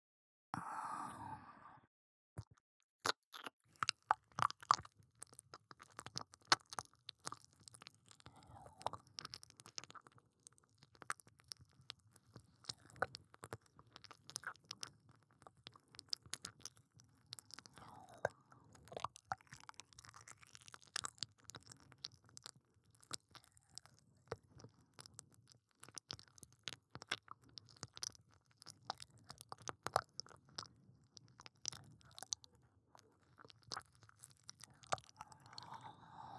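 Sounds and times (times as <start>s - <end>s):
short breathy sound: 0.6s - 1.9s, 35.2s - 36.3s
ASMR mouth sounds of chewing and nibbling on an ear: 2.4s - 36.3s.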